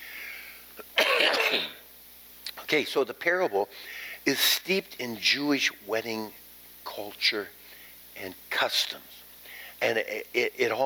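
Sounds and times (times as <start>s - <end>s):
quiet hiss: 0.0s - 10.8s
short harsh cough: 0.9s - 1.8s
speech: 2.7s - 7.6s, 8.2s - 9.2s, 9.8s - 10.8s.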